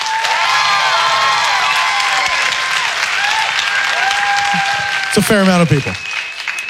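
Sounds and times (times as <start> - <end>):
audience applause voting for cake: 0.0 - 6.6
audience cheers and whoops: 0.0 - 6.6
speech: 5.2 - 6.1.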